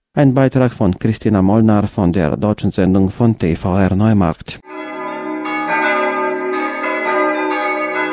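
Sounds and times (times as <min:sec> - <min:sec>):
speech: 0:00.2 - 0:04.8
church death knell bell tolling: 0:04.6 - 0:08.1.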